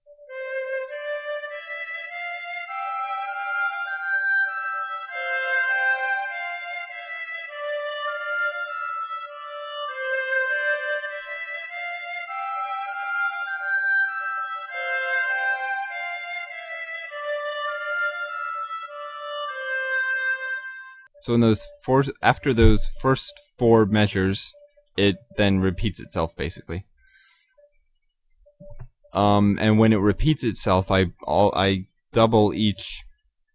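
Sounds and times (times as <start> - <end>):
flute and oboe playing a melody together: 0.0 - 26.1
speech: 21.2 - 26.9, 29.2 - 33.1.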